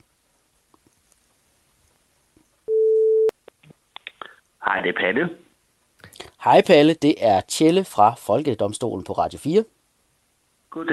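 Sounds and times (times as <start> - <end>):
telephone ringback tone while dialing out on a touch-tone phone: 2.7 - 3.3
speech: 4.8 - 5.4, 6.4 - 9.8, 10.8 - 10.9.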